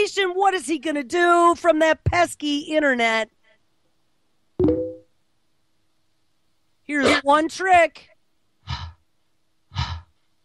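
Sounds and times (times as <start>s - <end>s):
speech: 0.1s - 3.4s, 6.9s - 8.1s
man breathing heavily: 8.6s - 9.0s, 9.7s - 10.3s.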